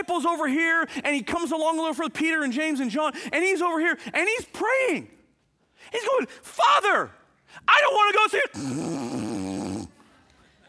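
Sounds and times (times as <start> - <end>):
speech: 0.0 - 5.2, 5.8 - 9.3
person imitating a snore with their voice: 8.6 - 10.0.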